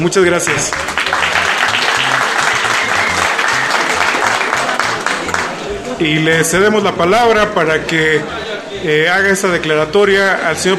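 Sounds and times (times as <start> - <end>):
speech: 0.0 - 1.4, 6.0 - 10.7
crowd applauding: 0.0 - 6.0.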